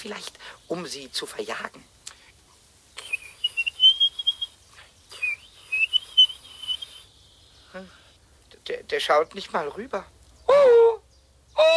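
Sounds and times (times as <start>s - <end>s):
speech: 0.0s - 2.0s, 7.7s - 8.0s, 8.7s - 11.0s, 11.6s - 11.7s
whistled imitation of a blackbird's song: 2.9s - 8.0s, 10.4s - 11.7s.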